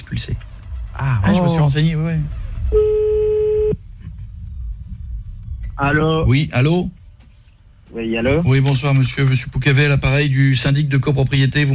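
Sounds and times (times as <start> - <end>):
speech: 0.1 - 3.2, 5.8 - 7.0, 7.9 - 11.7
telephone tone as a call is placed: 2.7 - 3.8.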